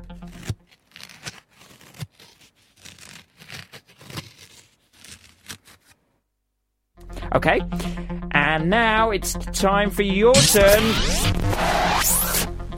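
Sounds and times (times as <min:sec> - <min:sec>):
playing card rubbed against a short beard: 0:00.0 - 0:06.0, 0:10.4 - 0:12.5
speech: 0:07.4 - 0:11.4.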